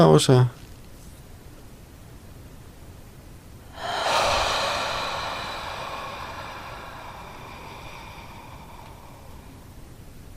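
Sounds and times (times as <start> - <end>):
speech: 0.0 - 0.6
long deep breath drawn in slowly: 3.7 - 10.3.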